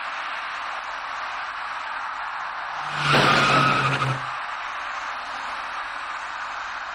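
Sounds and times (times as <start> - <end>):
white car tires squealing skidding on a rain-slick intersection: 2.3 - 5.2.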